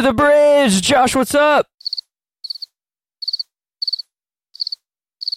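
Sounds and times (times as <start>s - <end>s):
speech: 0.1s - 2.0s
crickets chirping: 1.9s - 2.7s, 3.2s - 5.3s.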